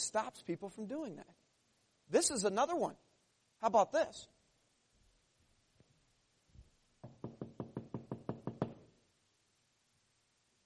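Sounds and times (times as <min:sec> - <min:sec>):
speech: 0:00.0 - 0:01.5, 0:02.1 - 0:04.4
firm knocks on a door: 0:07.0 - 0:08.9.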